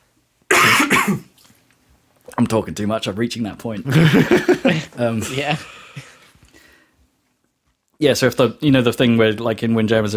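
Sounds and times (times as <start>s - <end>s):
person coughing: 0.5s - 1.3s
speech: 1.0s - 1.3s, 2.4s - 6.1s, 8.0s - 10.1s
laughter: 3.9s - 6.2s
faint raspy breath: 5.6s - 7.1s.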